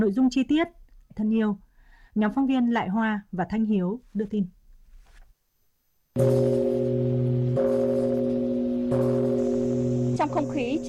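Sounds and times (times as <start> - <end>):
speech: 0.0 - 4.6, 6.2 - 6.9, 10.2 - 10.8
large ceremonial memorial bell struck: 6.2 - 10.8.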